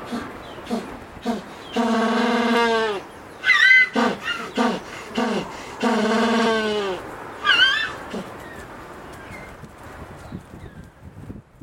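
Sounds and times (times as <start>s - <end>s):
African penguin braying: 0.0s - 8.4s.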